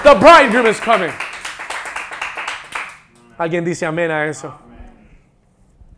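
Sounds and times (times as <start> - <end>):
audience applauding loudly: 0.0 - 3.2
speech: 0.1 - 1.3, 3.4 - 4.7.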